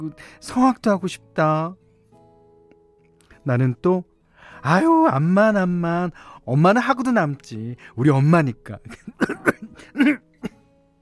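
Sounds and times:
speech: 0:00.0 - 0:01.8, 0:03.4 - 0:10.3
harsh raspy coughing: 0:08.9 - 0:10.6.

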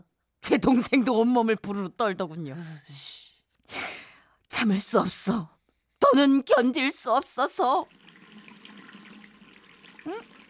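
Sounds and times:
speech: 0:00.5 - 0:03.2, 0:04.6 - 0:08.0, 0:10.0 - 0:10.3
water trickling and splashing in a steady stream: 0:07.6 - 0:10.4.

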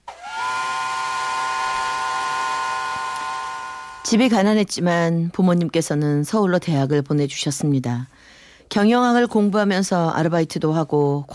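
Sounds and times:
steam train whistle blowing at departure: 0:00.0 - 0:04.1
speech: 0:04.1 - 0:11.3.

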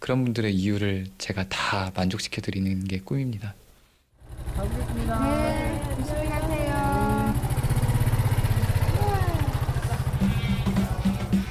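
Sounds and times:
speech: 0:00.1 - 0:03.6, 0:04.6 - 0:05.4
old scooter engine driving away: 0:04.2 - 0:11.4.

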